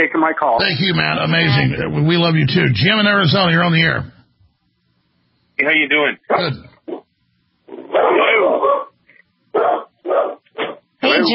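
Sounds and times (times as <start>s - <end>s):
speech: 0.0s - 4.2s, 5.6s - 6.7s, 11.1s - 11.3s
dogs barking over a phone line: 7.8s - 10.9s.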